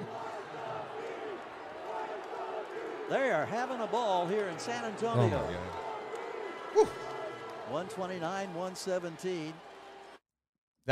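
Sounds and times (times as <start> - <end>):
large crowd of basketball fans roaring and chanting in an arena: 0.0 - 10.2
speech: 3.1 - 5.8, 7.7 - 9.7.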